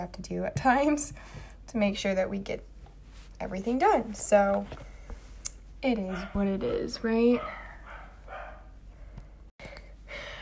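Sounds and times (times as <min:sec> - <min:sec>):
speech: 0:00.0 - 0:02.7, 0:03.4 - 0:04.9, 0:05.8 - 0:07.6
household dog barking: 0:06.0 - 0:06.6, 0:07.2 - 0:08.8.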